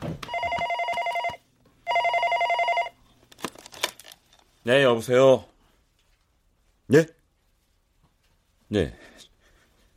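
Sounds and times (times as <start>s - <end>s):
telephone ringing: 0.2s - 3.1s
speech: 4.7s - 5.5s, 6.9s - 7.2s, 8.7s - 9.2s.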